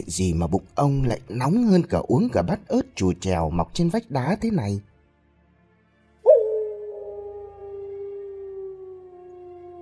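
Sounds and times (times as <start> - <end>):
speech: 0.0 - 4.9
wolf howling long from a distant forest at night: 6.3 - 9.8.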